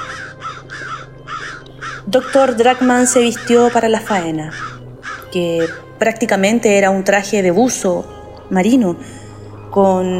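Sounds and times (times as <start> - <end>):
crow cawing: 0.0 - 6.0
speech: 2.1 - 4.7, 5.3 - 9.2, 9.8 - 10.1.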